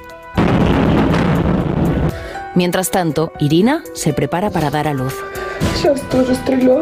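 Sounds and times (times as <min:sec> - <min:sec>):
missile explosion destroying a government building in Kharkiv: 0:00.4 - 0:02.4
speech: 0:02.6 - 0:06.8.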